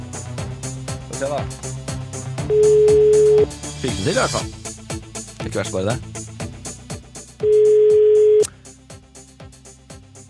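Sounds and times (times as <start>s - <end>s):
rhythmic music bed: 0.0s - 10.2s
speech: 1.2s - 1.8s, 2.5s - 4.6s, 5.4s - 6.2s
telephone ringing tone after dialing a number: 2.5s - 3.5s, 7.4s - 8.5s.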